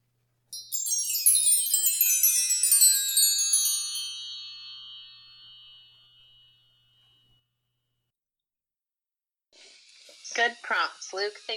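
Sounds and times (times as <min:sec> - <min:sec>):
wind chime ringing: 0:00.5 - 0:07.4
speech: 0:10.4 - 0:11.5.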